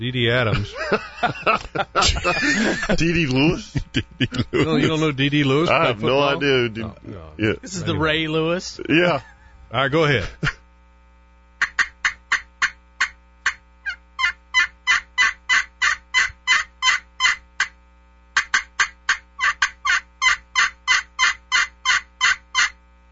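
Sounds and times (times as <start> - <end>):
speech: 0.0 - 10.6
laughter: 0.5 - 9.6
turkey call imitating a gobbling turkey: 11.6 - 17.8, 18.4 - 22.8.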